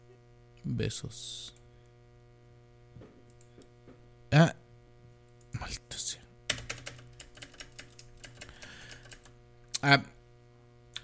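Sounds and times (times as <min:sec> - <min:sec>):
speech: 0:00.6 - 0:01.6, 0:04.3 - 0:04.6, 0:09.8 - 0:10.1
typing on a mechanical keyboard: 0:06.5 - 0:09.3.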